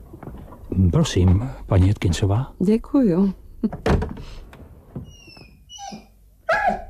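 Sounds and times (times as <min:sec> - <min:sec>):
speech: 0:00.9 - 0:04.4
dog in a car whimpering and whining: 0:05.0 - 0:06.8
dog in a car barking: 0:06.5 - 0:06.8.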